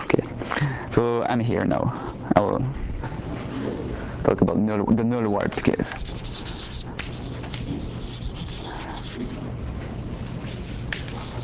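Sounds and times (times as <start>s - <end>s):
steady hiss: 0.0s - 11.4s
speech: 1.0s - 3.2s, 4.2s - 6.6s
writing on a board during a physics lecture: 5.5s - 9.4s, 10.4s - 11.4s.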